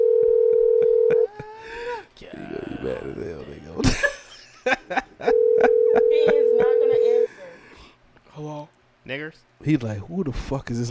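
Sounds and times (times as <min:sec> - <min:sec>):
phone dial tone after call hung up: 0:00.0 - 0:01.3, 0:05.3 - 0:07.3
speech: 0:02.8 - 0:04.1, 0:09.1 - 0:10.8.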